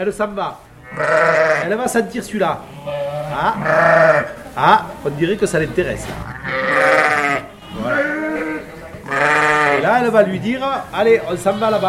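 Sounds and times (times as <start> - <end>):
speech: 0.0 - 6.3, 9.8 - 11.8
ewe bleating to call her lamb: 0.8 - 1.8, 2.5 - 4.5, 6.2 - 10.1, 11.1 - 11.8.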